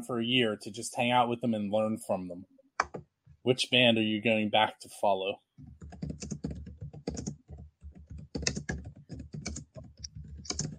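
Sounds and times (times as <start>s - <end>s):
speech: 0.0s - 2.5s, 3.4s - 5.4s
loud rapid laptop keyboard typing: 5.6s - 10.7s.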